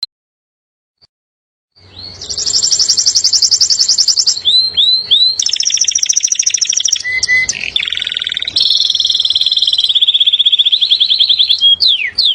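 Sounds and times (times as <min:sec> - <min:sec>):
canary singing: 0:01.8 - 0:12.3.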